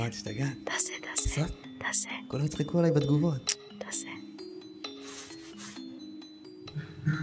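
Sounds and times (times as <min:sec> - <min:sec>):
speech: 0:00.0 - 0:04.2
coarse beard bristles rubbed against a microphone: 0:05.0 - 0:05.9.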